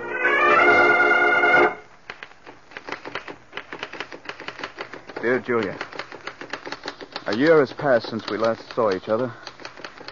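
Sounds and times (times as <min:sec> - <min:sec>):
brief sustained musical tone: 0:00.0 - 0:01.9
typewriter keystrokes typing a letter at a desk: 0:02.1 - 0:10.1
speech: 0:05.2 - 0:05.9, 0:07.3 - 0:09.5.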